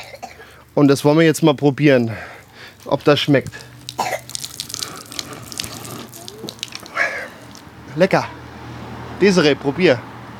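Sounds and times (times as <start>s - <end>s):
speech: 0.8s - 3.7s, 8.0s - 8.4s, 9.2s - 10.1s
water running from a fountain spout: 3.5s - 7.7s.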